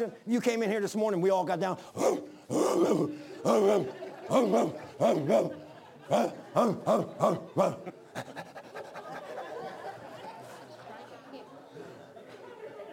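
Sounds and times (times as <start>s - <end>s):
speech: 0.0s - 8.5s
person imitating a barking dog: 2.0s - 8.0s
laughter: 2.0s - 12.9s.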